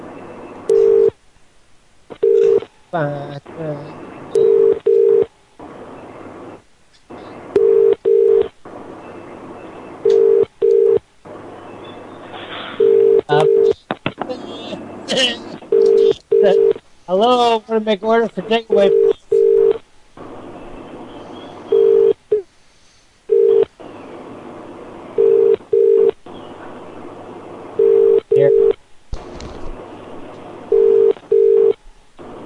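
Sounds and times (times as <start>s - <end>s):
noisy crackling phone line background: 0.0s - 17.2s, 18.1s - 32.4s
telephone ringing through a phone connection: 0.7s - 1.2s, 2.2s - 2.6s, 4.4s - 5.3s, 7.6s - 8.5s, 10.0s - 11.0s, 12.8s - 13.8s, 15.7s - 16.8s, 18.7s - 19.8s, 21.7s - 22.2s, 23.3s - 23.7s, 25.2s - 26.2s, 27.8s - 28.8s, 30.7s - 31.8s
speech: 2.9s - 4.5s, 17.2s - 19.1s.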